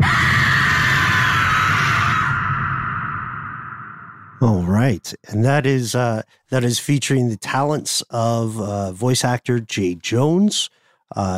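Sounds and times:
woman's eerie ghostly scream sound effect: 0.0s - 4.4s
speech: 4.4s - 11.3s.

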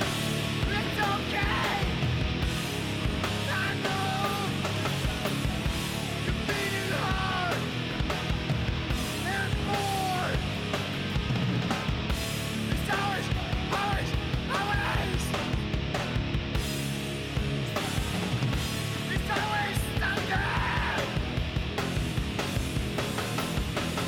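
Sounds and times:
distorted guitars: 0.0s - 24.0s
driving drums: 0.0s - 24.0s
loud densely layered rock track: 0.0s - 24.0s
raw male voice shouting and half-singing: 0.6s - 2.0s, 3.4s - 4.6s, 6.2s - 8.1s, 9.2s - 10.5s, 12.6s - 15.5s, 19.0s - 21.3s.

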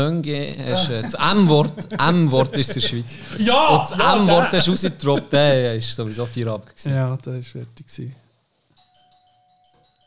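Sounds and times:
speech: 0.0s - 8.2s
laughter: 0.7s - 5.6s
electronic doorbell chiming: 8.8s - 10.0s.

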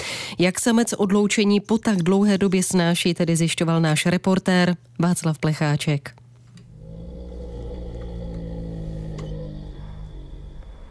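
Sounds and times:
speech: 0.4s - 6.2s
male bear snoring softly in a zoo enclosure in Czech Republic: 6.6s - 10.8s.

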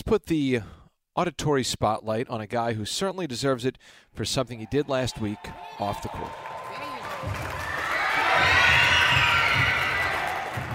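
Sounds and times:
speech: 0.1s - 6.5s, 7.2s - 8.8s
loud crowd cheering and shouting in an echoing recreation center: 4.5s - 10.7s
applause: 5.2s - 10.7s.

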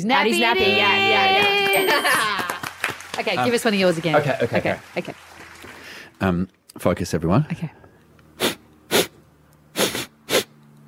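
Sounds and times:
speech: 0.0s - 2.4s, 3.2s - 5.4s, 6.2s - 7.8s
quick breathy nasal sniffs: 8.3s - 10.6s.

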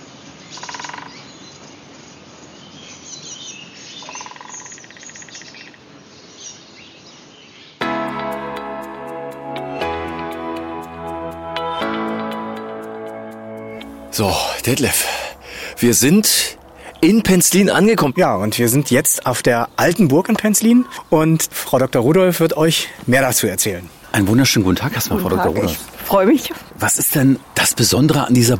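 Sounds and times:
birds chirping by a lake on a nature trail: 0.0s - 7.8s, 13.7s - 28.5s
outdoor wind by a lake: 0.0s - 7.8s, 12.2s - 28.5s
speech: 14.2s - 28.5s.

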